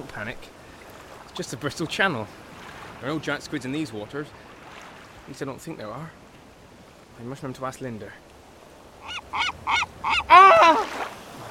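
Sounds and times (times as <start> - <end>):
speech: 0.1 - 0.6, 1.4 - 2.4, 3.0 - 4.5, 5.3 - 6.2, 7.2 - 8.2
seagull squawking: 9.0 - 11.0.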